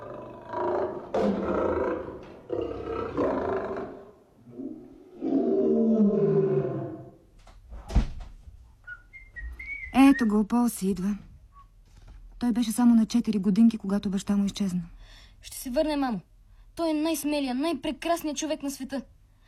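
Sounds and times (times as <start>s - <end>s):
lion roaring: 0.0s - 7.2s
speech: 10.2s - 11.3s, 12.5s - 19.1s.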